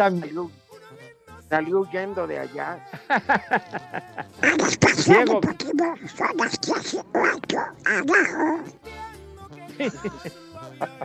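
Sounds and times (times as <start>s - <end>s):
speech: 0.0s - 0.6s, 1.5s - 9.0s, 9.8s - 11.0s
laughter: 2.8s - 5.4s, 9.7s - 11.0s
person imitating a cartoon duck in a raspy quacking voice: 4.3s - 8.8s.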